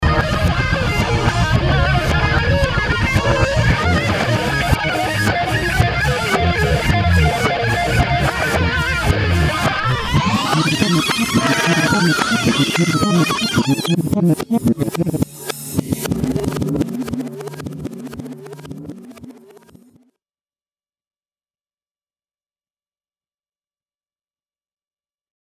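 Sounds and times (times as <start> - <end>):
reversed guitar band with analog recording: 0.0 - 20.0.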